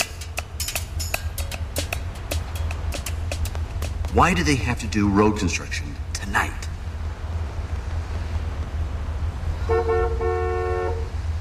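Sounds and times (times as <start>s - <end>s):
steady low rumble of engine: 0.0s - 11.4s
speech: 4.2s - 6.6s
car horn honking: 9.6s - 11.1s.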